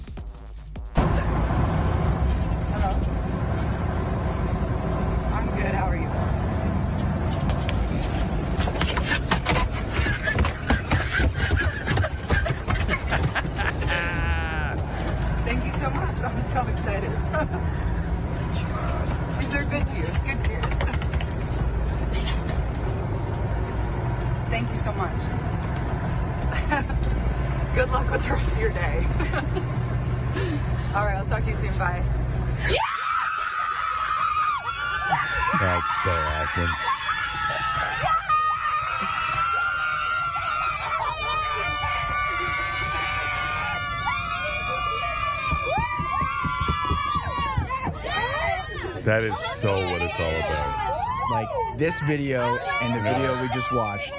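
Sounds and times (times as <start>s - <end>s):
low engine rumble inside a moving bus: 0.0s - 54.1s
laughter: 9.8s - 15.2s, 26.5s - 27.2s, 28.1s - 30.8s
indistinct chatter of football players: 47.7s - 54.1s
speech: 49.1s - 50.7s, 51.3s - 54.1s.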